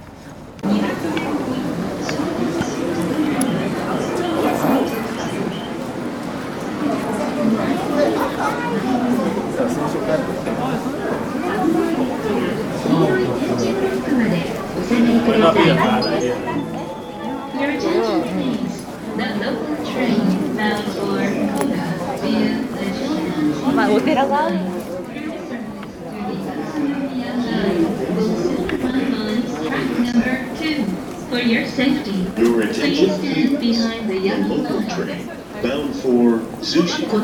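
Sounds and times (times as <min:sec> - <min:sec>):
crowd chatter on a busy train platform: 0:00.0 - 0:37.2
footsteps on a busy train platform: 0:20.6 - 0:22.2.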